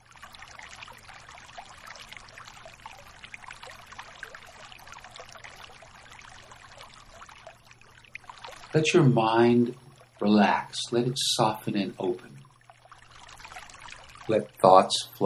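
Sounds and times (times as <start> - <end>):
steady trickling splashy water: 0.0 - 15.2
speech: 8.7 - 12.3, 14.3 - 15.2.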